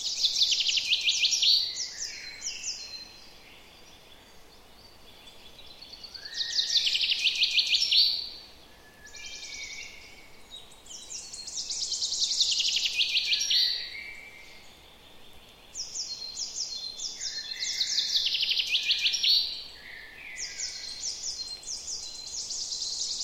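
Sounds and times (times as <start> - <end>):
common chaffinch Fringilla coelebs singing: 0.0 - 23.2
soft bird chirps: 0.0 - 23.2.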